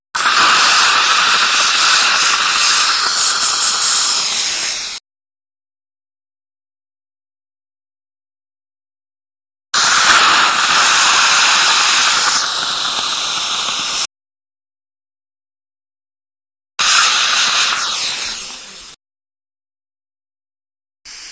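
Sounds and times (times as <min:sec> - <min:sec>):
saliva ejector suction: 0:00.2 - 0:05.0, 0:09.8 - 0:14.1, 0:16.8 - 0:19.0.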